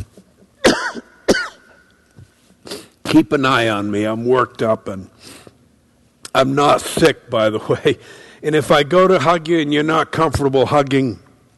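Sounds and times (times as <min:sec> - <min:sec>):
sharp loud coughs: 0:00.6 - 0:01.8
speech: 0:03.1 - 0:05.2, 0:06.4 - 0:11.2.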